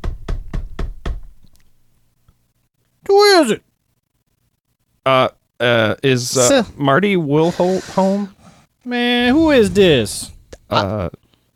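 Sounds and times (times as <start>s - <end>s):
knocking on a house door: 0.0s - 1.4s
speech: 3.1s - 3.7s, 5.0s - 11.2s.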